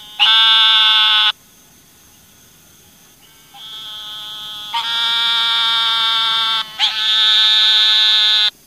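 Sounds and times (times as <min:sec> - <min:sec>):
eastern narrow-mouthed toad giving buzzy nasal calls: 0:00.0 - 0:01.4, 0:03.2 - 0:08.6.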